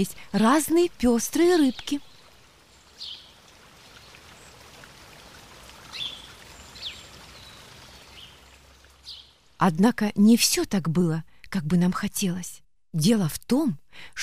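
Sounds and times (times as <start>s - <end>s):
speech: 0.0s - 2.1s, 9.6s - 14.2s
river water flowing: 0.0s - 9.6s.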